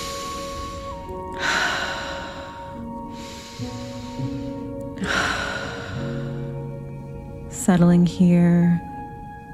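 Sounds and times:
slow breathing in through the nose and out through the mouth: 0.0 - 7.2
soft steady background of sustained tones: 0.0 - 9.5
speech: 7.7 - 8.9.

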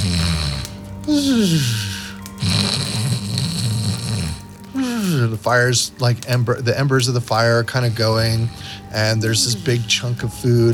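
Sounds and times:
voice imitating an old man snoring: 0.0 - 5.4
speech: 1.1 - 1.9, 5.2 - 10.7.

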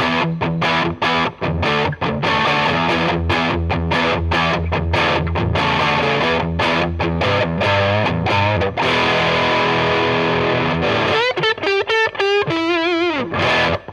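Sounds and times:
electric guitar with humbucker pickup through Boss overdrive pedal on Angry Charlie setting: 0.0 - 13.9.

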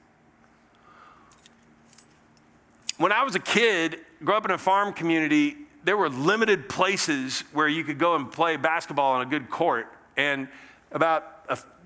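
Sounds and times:
faint steady hum: 0.0 - 11.8
keys jangling: 1.3 - 3.0
speech: 3.0 - 11.8.

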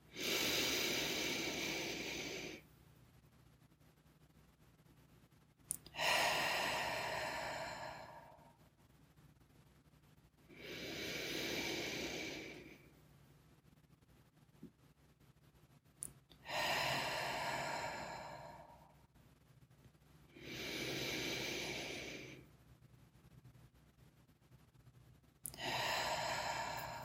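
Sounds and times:
deep breaths in through the nose and out again: 0.0 - 2.7, 5.9 - 8.7, 10.4 - 13.0, 16.4 - 19.1, 20.3 - 22.6, 25.5 - 27.0.

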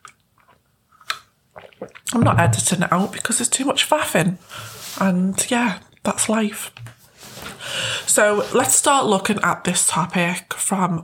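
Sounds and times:
person sipping water: 0.4 - 2.2
speech: 2.1 - 6.9, 8.2 - 11.0.

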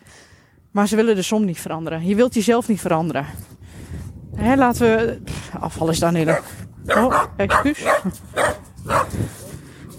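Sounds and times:
speech: 0.7 - 3.5, 4.4 - 9.4
small dog barking: 6.3 - 9.2.

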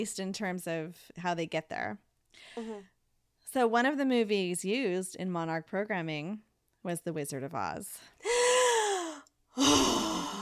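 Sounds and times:
speech: 0.0 - 8.4
person gasping: 2.4 - 2.9, 8.2 - 10.4.

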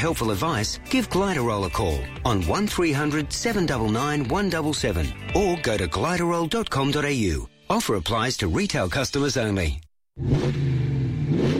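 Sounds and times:
speech: 0.0 - 10.7
new Ram 1500 pickup truck V8 Hemi engine revving: 10.2 - 11.5.

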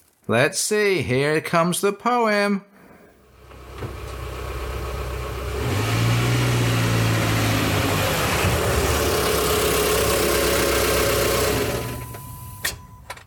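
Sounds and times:
speech: 0.3 - 2.7
car engine idling, revving and driving: 3.2 - 12.9.

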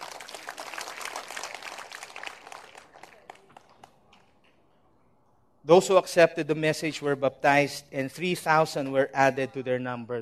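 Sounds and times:
people at a church service clapping: 0.0 - 4.4
speech: 5.7 - 10.1.

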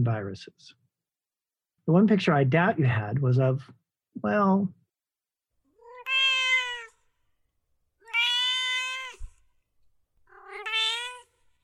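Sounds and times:
speech: 0.0 - 0.8, 1.9 - 4.8
cat meowing: 5.7 - 7.1, 8.0 - 9.5, 10.2 - 11.6.

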